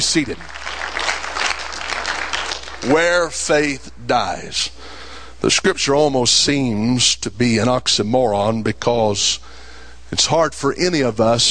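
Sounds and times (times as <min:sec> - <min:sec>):
speech: 0:00.0 - 0:00.7, 0:02.8 - 0:11.5
audience applauding: 0:00.0 - 0:03.4.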